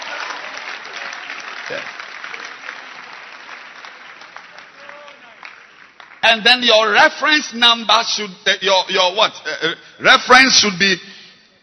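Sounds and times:
group hand clapping: 0:00.0 - 0:06.4
speech: 0:01.7 - 0:02.0, 0:06.3 - 0:11.1.

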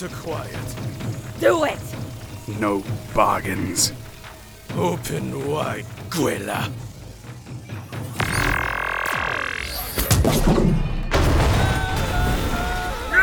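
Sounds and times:
speech: 0:00.0 - 0:01.9, 0:02.5 - 0:04.0, 0:04.7 - 0:06.9
swooping electronic tones: 0:08.1 - 0:10.2
sci-fi starship cannon blasts: 0:10.1 - 0:13.1.

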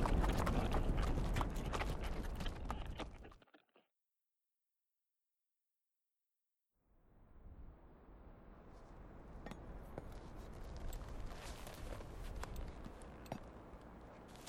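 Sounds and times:
horses' hooves clip-clopping while riding through the desert: 0:00.0 - 0:03.3, 0:09.5 - 0:14.4.

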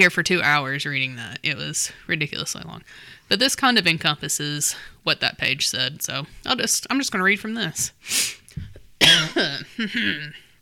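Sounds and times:
speech: 0:00.0 - 0:10.4
person clearing throat: 0:09.0 - 0:10.4.

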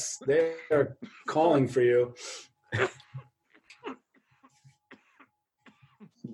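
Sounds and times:
speech: 0:00.0 - 0:03.3
person coughing into their elbow: 0:02.7 - 0:06.3
throat sounds: 0:03.0 - 0:06.3.

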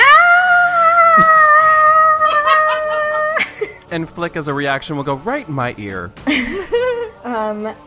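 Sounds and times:
person screaming: 0:00.0 - 0:03.4
laughter: 0:01.2 - 0:03.9, 0:06.3 - 0:07.2
speech: 0:04.0 - 0:07.8.

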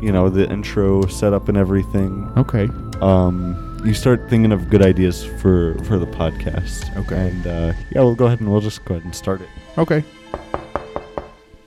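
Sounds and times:
speech: 0:00.0 - 0:10.4
knocking on a door: 0:10.3 - 0:11.4.

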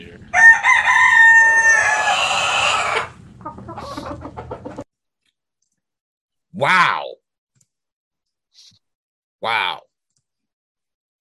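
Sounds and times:
rooster crowing: 0:00.3 - 0:03.2
hen clucking: 0:01.6 - 0:04.9
speech: 0:06.6 - 0:07.1, 0:09.4 - 0:09.8.

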